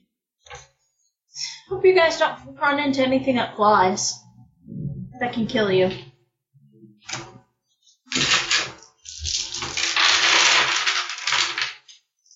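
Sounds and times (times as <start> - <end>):
speech: 1.7 - 4.2, 5.2 - 6.1
big pile of dice clattering on a table during a tabletop role-playing game: 8.2 - 12.0.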